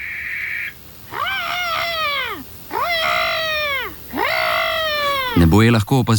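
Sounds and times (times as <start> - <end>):
barn owl calling at night in a forest: 0.0 - 5.8
speech: 5.4 - 6.1.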